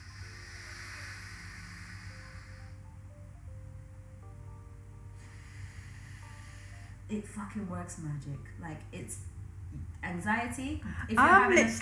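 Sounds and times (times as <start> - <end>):
slow steady alternate nostril breathing through the nose: 0.0 - 2.8, 5.2 - 7.0
soft tonal background: 0.0 - 11.7
speech: 7.1 - 11.7.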